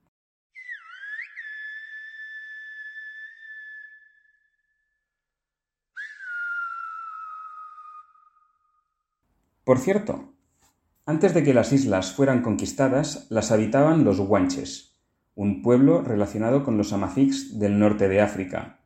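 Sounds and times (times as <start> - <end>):
loud piercing Silbo Gomero whistled language phrases of La Gomera in the Canary Islands: 0.5 - 4.8, 6.0 - 9.0
speech: 9.7 - 10.3, 11.1 - 18.8.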